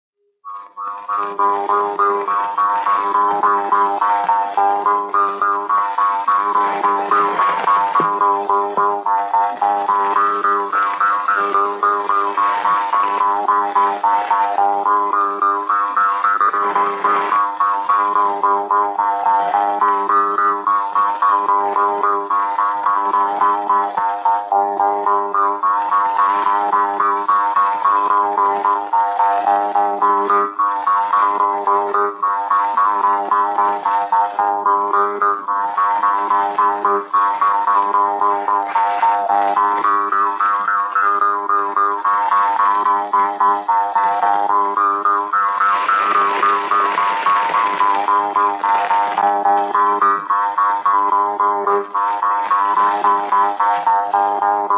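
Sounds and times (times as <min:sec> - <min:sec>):
jew's harp playing a labajalg folk tune in Joelahtme: 0:00.2 - 0:54.7.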